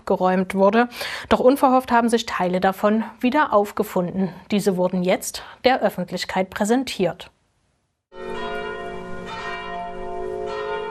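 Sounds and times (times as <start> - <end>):
speech: 0.1 - 7.4
church bells ringing in a full resonant peal at a grave slab unveiling: 8.1 - 10.8.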